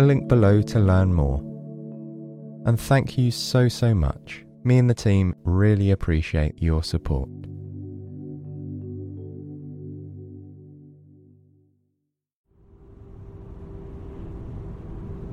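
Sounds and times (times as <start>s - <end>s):
speech: 0.0s - 1.5s, 2.6s - 7.6s
low soft engine drone: 12.6s - 15.3s
road noise: 12.8s - 15.3s.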